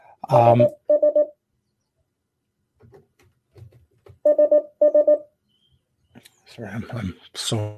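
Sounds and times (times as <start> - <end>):
speech: 0.3 - 0.8, 6.6 - 7.7
phone beeping while being muted: 0.3 - 1.4, 4.2 - 5.3.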